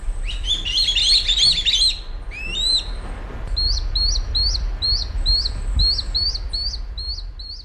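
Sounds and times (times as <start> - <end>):
low rumble: 0.0 - 7.6
swallow-tailed kite fledglings begging for food with high chirps and whistled calls: 0.2 - 7.6.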